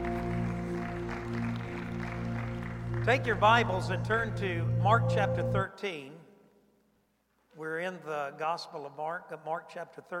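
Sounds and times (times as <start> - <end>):
audience clapping at a church worship service: 0.0 - 4.6
sustained musical tones: 0.0 - 5.7
speech: 3.1 - 6.2, 7.6 - 10.1.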